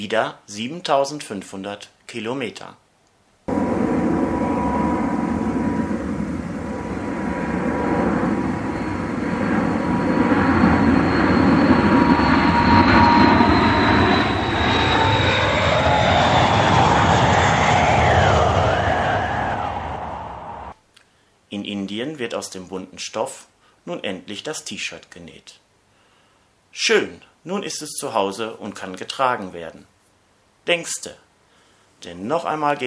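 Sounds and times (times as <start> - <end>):
speech: 0.0 - 2.8, 22.2 - 25.6, 26.8 - 29.9, 30.6 - 31.2, 32.0 - 32.8
airplane in flight engine roar: 3.5 - 20.8.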